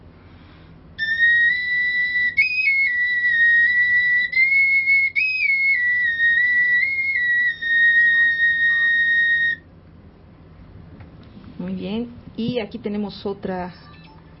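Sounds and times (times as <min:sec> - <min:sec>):
small Mexica flute with four holes playing: 0:01.0 - 0:09.6
speech: 0:12.5 - 0:13.9.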